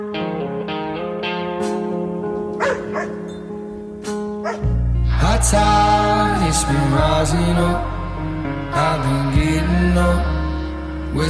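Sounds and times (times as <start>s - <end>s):
music with sustained tones: 0.0s - 11.2s
dog barking: 2.6s - 3.3s, 4.4s - 4.7s
speech: 6.5s - 7.9s, 8.7s - 10.4s.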